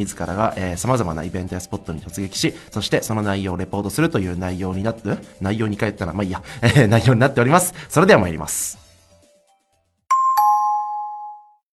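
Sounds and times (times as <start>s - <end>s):
speech: 0.0s - 8.8s
short two-note electronic chime: 10.1s - 11.6s.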